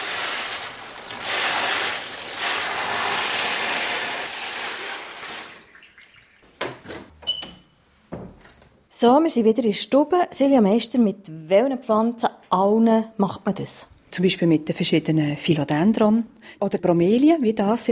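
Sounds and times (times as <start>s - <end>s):
shower head spraying slightly less than hand-warm water onto a green houseplant in a bathtub: 0.0s - 5.6s
water dripping: 0.0s - 6.5s
speech: 9.0s - 17.8s.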